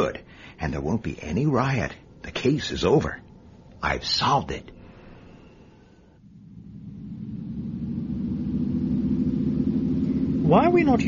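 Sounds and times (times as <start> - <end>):
speech: 0.0 - 4.8, 10.5 - 11.0
squad car engine rumble driving through an old tunnel road: 6.2 - 11.0.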